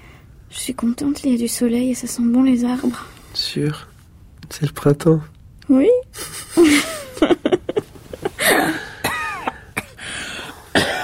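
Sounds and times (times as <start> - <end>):
speech: 0.5 - 3.9, 4.5 - 7.3
woman coughing: 8.4 - 10.0, 10.7 - 11.0.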